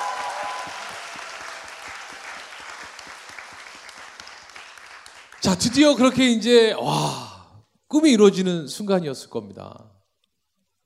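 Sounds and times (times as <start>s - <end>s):
audience applause for a guest: 0.0s - 6.0s
speech: 5.4s - 7.2s, 7.9s - 9.9s.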